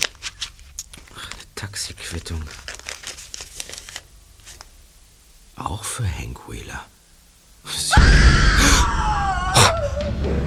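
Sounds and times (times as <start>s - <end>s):
speech: 1.6s - 2.7s, 5.6s - 7.0s, 9.8s - 10.4s
person screaming after stepping on a floor tile in a house: 7.9s - 10.2s.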